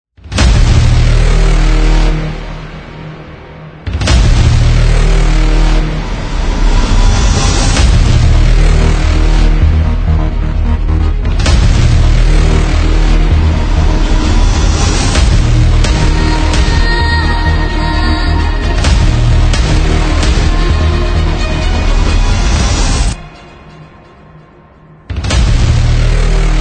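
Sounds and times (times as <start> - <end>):
short dynamic trailer ident: 0.2 - 26.5.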